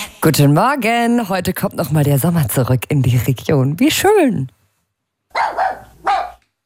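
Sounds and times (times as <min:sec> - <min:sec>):
speech: 0:00.3 - 0:04.5
dachshund and German shepherd barking at an outdoor public swimming pool: 0:05.3 - 0:06.4.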